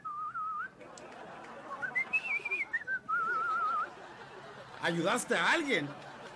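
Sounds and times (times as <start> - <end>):
person whistling a cheerful wavering tune: 0.0 - 0.7, 1.8 - 3.9
laughter: 0.7 - 6.3
speech: 4.8 - 6.0.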